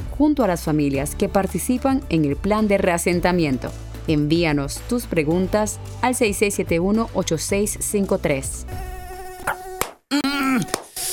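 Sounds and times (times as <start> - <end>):
speech: 0.2 - 9.6
Aedes aegypti mosquito buzzing: 8.6 - 9.9.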